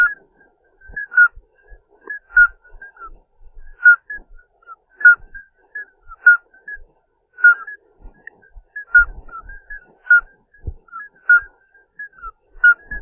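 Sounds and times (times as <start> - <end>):
common midwife toads Alytes obstetricans giving piping notes: 0.9 - 1.4, 2.0 - 3.1, 3.7 - 6.5, 7.4 - 7.8, 8.8 - 10.3, 10.9 - 13.0.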